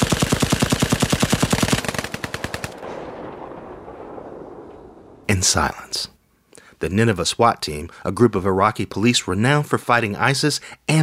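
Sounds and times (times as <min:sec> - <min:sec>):
heavy barrage of rapid automatic gunfire: 0:00.0 - 0:03.0
speech: 0:05.3 - 0:06.2, 0:06.8 - 0:11.0.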